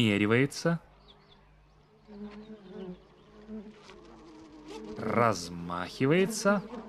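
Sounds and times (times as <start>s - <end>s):
speech: 0.0s - 0.9s, 5.0s - 6.8s
faint outdoor background: 0.0s - 6.8s
bee buzzing while hovering: 1.8s - 6.8s.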